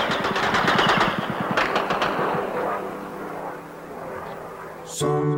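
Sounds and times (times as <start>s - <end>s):
machine-gun fire from a military attack: 0.0s - 5.0s
steady harmonic tone: 2.1s - 5.2s.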